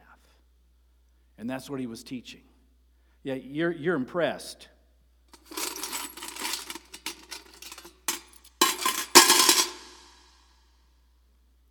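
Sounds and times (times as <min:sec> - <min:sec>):
speech: 0:01.4 - 0:02.5, 0:03.2 - 0:04.8
coins spilling onto a hard surface: 0:05.4 - 0:10.1.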